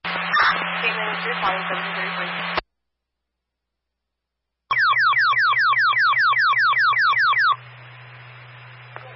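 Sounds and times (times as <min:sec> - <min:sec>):
low hum: 0:00.0 - 0:02.6, 0:04.7 - 0:09.1
radio static: 0:00.0 - 0:02.6, 0:06.1 - 0:09.1
fire dispatch alert tone of falling electronic sweeps: 0:00.1 - 0:02.6, 0:04.7 - 0:07.6
speech: 0:01.2 - 0:02.6.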